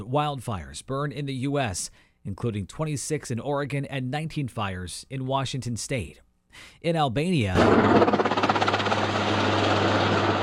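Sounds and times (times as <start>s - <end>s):
speech: 0.0s - 8.3s
military firefighting helicopter rotors thumping over a wildfire on a mountain: 7.6s - 10.4s.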